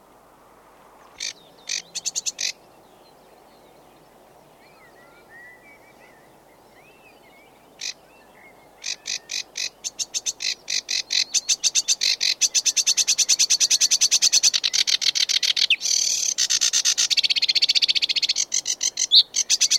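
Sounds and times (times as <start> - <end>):
sedge warbler chattering song: 1.2 - 3.1, 6.8 - 19.7.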